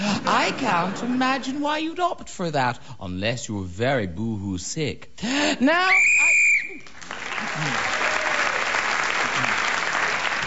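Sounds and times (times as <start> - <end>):
speech: 0.5 - 6.2
whistle blast signalling end of round: 5.9 - 6.8
crowd applause: 6.8 - 10.4.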